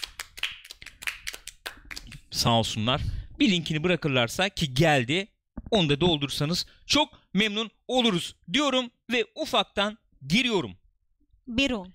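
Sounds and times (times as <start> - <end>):
hands clapping for live stream chat moderators: 0.0 - 2.3
speech: 2.4 - 10.8, 11.5 - 11.9.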